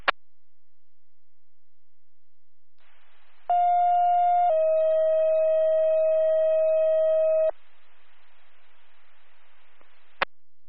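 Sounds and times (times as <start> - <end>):
faint hiss: 2.8 - 4.4, 7.5 - 10.2
fire dispatch radio alert tones paging a fire company: 3.5 - 7.5.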